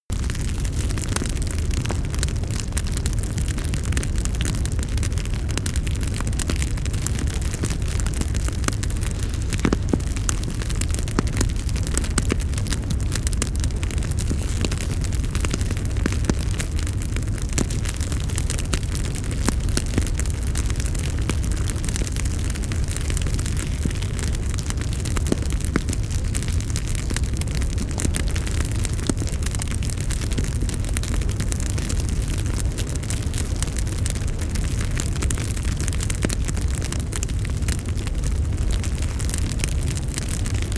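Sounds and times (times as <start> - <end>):
large campfire: 0.1 - 40.7.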